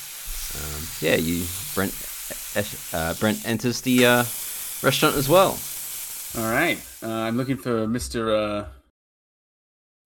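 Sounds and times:
meat patties frying on a hot grill: 0.0s - 7.5s
speech: 1.0s - 5.7s, 6.3s - 8.8s.

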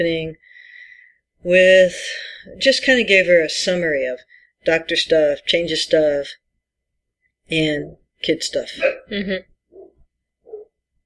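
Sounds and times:
speech: 0.0s - 0.6s, 1.4s - 6.4s, 7.5s - 9.5s
old female dog with canine dementia barking: 8.8s - 9.1s, 9.7s - 10.8s.

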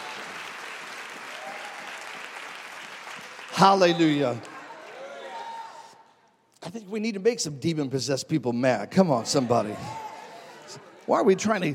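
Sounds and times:
crowd applauding: 0.0s - 5.9s
speech: 3.6s - 4.5s, 6.8s - 10.1s, 10.7s - 11.7s.

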